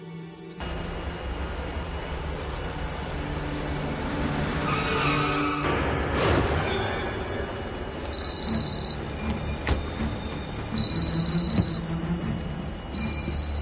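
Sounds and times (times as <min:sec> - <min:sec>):
train rumbling on rails: 0:00.0 - 0:13.6
train wheels squealing and clanking: 0:03.3 - 0:13.6.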